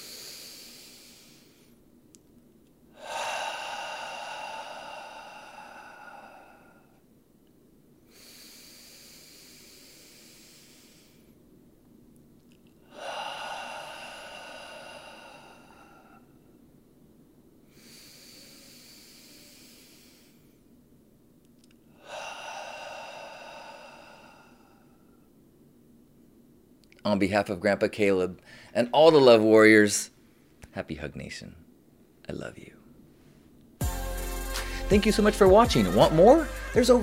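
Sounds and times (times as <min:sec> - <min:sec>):
deep breaths in through the nose: 0:00.0 - 0:01.8, 0:02.9 - 0:07.1, 0:08.0 - 0:11.4, 0:12.8 - 0:16.6, 0:17.6 - 0:20.7, 0:21.9 - 0:25.4, 0:33.2 - 0:34.9
speech: 0:27.0 - 0:30.2, 0:30.8 - 0:31.7, 0:32.3 - 0:32.8, 0:34.9 - 0:37.0.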